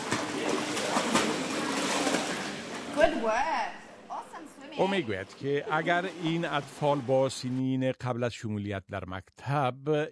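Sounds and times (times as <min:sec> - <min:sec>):
water splashing in an echoey pool during a children's swimming lesson: 0:00.0 - 0:03.6, 0:05.4 - 0:07.6
speech: 0:03.2 - 0:03.8, 0:04.8 - 0:10.0.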